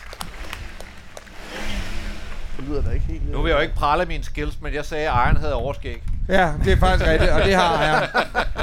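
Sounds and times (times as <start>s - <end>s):
1978 Pontiac Trans Am car engine revving: 0.0s - 4.7s
speech: 2.6s - 8.6s
laughter: 6.7s - 8.6s.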